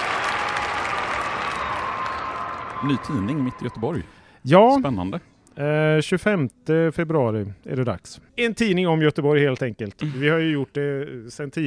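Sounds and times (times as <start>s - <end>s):
crowd applause: 0.0s - 3.8s
speech: 2.8s - 11.6s.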